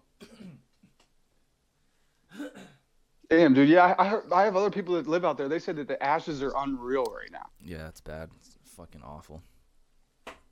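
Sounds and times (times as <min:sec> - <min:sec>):
person clearing throat irritated by wildfire smoke in California: 0:00.2 - 0:00.7, 0:02.3 - 0:02.8
person coughing from throat irritated by wildfire smoke in California: 0:00.2 - 0:00.7, 0:02.3 - 0:02.8
speech: 0:03.3 - 0:09.5.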